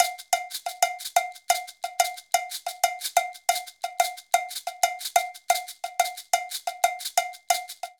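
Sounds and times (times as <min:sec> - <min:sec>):
Latin percussion cowbell in fusion six eight rhythm: 0:00.0 - 0:07.9
Latin percussion maracas in fusion six eight rhythm: 0:00.0 - 0:07.9.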